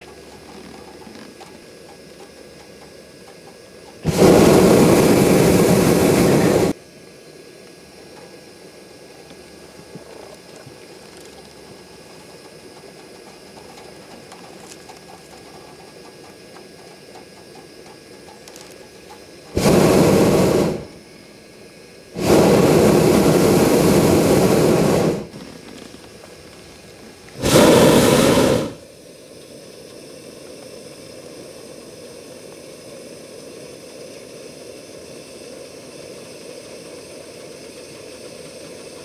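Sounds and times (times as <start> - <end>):
captive balloon air: 4.0 - 6.8, 19.5 - 21.0, 22.2 - 25.6, 27.4 - 28.8.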